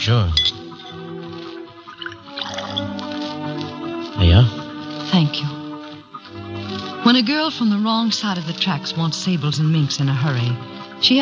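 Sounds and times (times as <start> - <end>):
speech: 0.0 - 0.6, 5.1 - 5.6, 7.1 - 11.1
bourbon being poured into a glass: 1.7 - 3.2.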